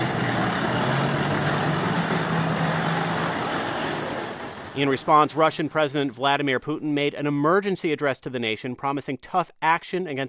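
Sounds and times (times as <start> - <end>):
armored vehicles rumbling through city streets: 0.0 - 5.9
speech: 4.8 - 10.2.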